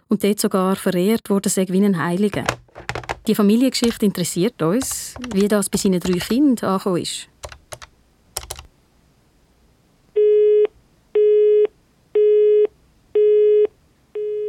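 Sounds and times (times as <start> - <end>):
speech: 0.1 - 7.3
keyboard clicks: 2.3 - 6.4, 7.4 - 8.7
unanswered telephone call tone beeps: 10.2 - 14.4.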